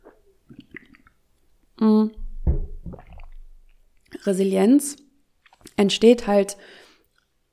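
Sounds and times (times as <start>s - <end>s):
person sipping from a cup: 0.0s - 1.2s, 2.9s - 3.4s
soft low gulps: 0.0s - 1.2s, 2.1s - 4.2s
speech: 1.8s - 2.2s, 4.2s - 5.0s, 5.8s - 6.8s
cup thuds as the cup is handled: 2.2s - 3.3s.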